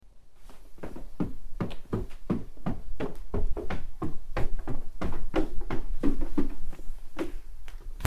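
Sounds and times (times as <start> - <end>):
footsteps on stairs: 0.4 - 8.0.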